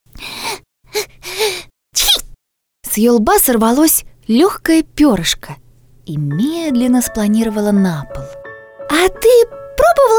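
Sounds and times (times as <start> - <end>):
voice performing a small squirrel's sneeze with breathy build-up: 2.0 - 2.4
speech: 3.0 - 8.4, 9.0 - 10.1.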